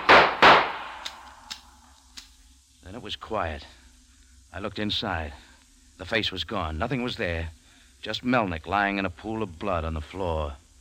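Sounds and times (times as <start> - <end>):
handgun gunshots fired at someone ducking into a hallway: 0.0 - 1.6
speech: 3.0 - 3.8, 4.5 - 10.6.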